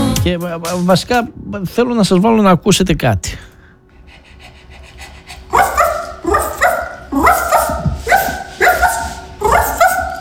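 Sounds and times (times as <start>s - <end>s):
speech: 0.2s - 3.5s
person imitating small dog yappy barks: 5.5s - 10.1s.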